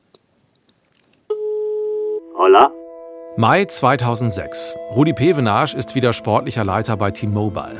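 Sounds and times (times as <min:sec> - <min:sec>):
electronic telephone line tone of a call: 0:01.3 - 0:02.7
speech: 0:02.4 - 0:02.8, 0:03.4 - 0:07.7.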